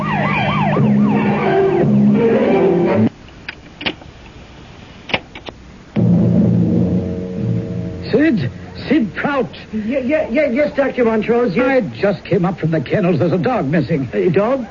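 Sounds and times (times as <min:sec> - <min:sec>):
police car siren wailing in rising and falling sweeps: 0:00.0 - 0:03.1
low steady tone: 0:06.0 - 0:09.8
speech: 0:09.4 - 0:14.7.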